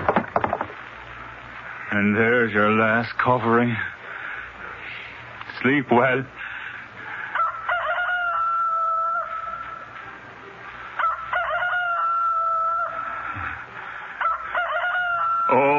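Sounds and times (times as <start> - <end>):
speech: 2.0 - 3.9, 5.6 - 6.4
rooster crowing: 7.2 - 10.1, 10.9 - 15.7.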